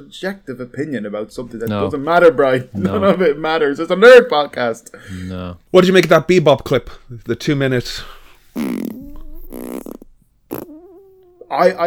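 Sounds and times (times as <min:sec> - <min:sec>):
speech: 0:00.0 - 0:09.0, 0:11.5 - 0:11.8
loud farts with squeaky tails: 0:08.5 - 0:11.4.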